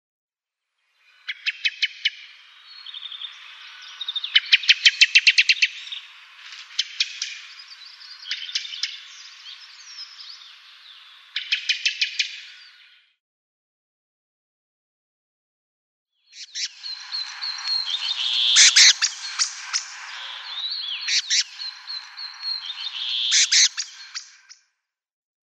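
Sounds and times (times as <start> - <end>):
black-throated thrush calling: 1.2 - 12.7, 16.4 - 24.5.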